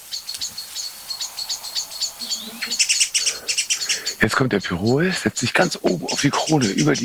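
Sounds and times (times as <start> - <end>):
blackbird and song thrush among songbirds scolding in alarm: 0.0 - 7.0
speech: 4.2 - 7.0.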